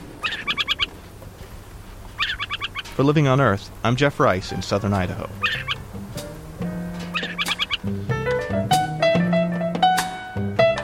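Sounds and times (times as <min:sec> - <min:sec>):
adult owl calling on a fence post in southern Idaho: 0:00.0 - 0:01.2, 0:01.9 - 0:03.8, 0:04.4 - 0:08.3
low outdoor rumble: 0:00.0 - 0:09.8
speech: 0:03.0 - 0:05.6.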